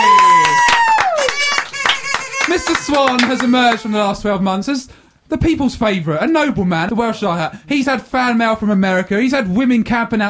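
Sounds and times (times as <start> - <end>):
voice cheering in a long falling whoop: 0.0 - 1.7
few people clapping: 0.0 - 4.0
speech: 2.9 - 10.2.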